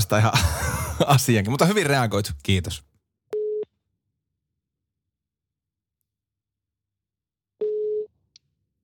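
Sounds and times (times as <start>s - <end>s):
speech: 0.0s - 2.9s
laughter: 0.2s - 1.4s
phone ringback tone electronic beeps: 7.6s - 8.1s.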